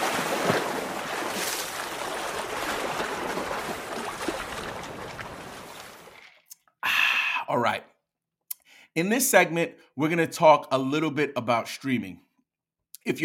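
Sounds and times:
flowing water: 0:00.0 - 0:06.4
speech: 0:07.6 - 0:07.9, 0:09.0 - 0:12.3, 0:13.0 - 0:13.2.

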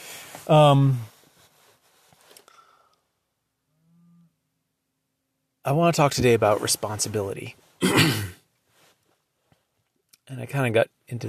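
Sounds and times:
speech: 0:00.5 - 0:01.1, 0:05.7 - 0:08.3, 0:10.3 - 0:11.2
cow mooing: 0:03.7 - 0:04.3.

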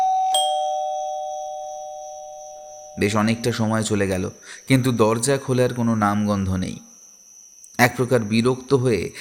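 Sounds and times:
doorbell rung giving a bright chime: 0:00.0 - 0:03.6
speech: 0:03.0 - 0:06.9, 0:07.8 - 0:09.1.

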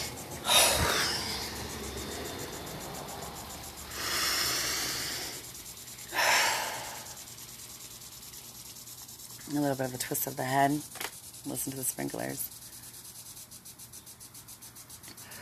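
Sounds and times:
deep breathing from the stomach: 0:00.0 - 0:03.0, 0:03.8 - 0:07.2
speech: 0:09.5 - 0:12.6.

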